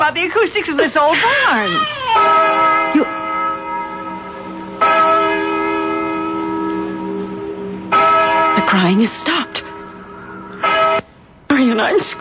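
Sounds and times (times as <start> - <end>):
speech: 0.1 - 3.2, 8.7 - 9.5, 11.8 - 12.1
large deep bell tolling the hour: 2.2 - 11.0.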